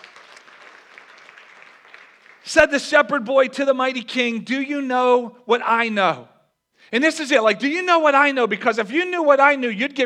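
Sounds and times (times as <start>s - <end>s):
audience applause for a children's performance: 0.0s - 2.5s
speech: 2.4s - 6.3s, 6.9s - 10.0s.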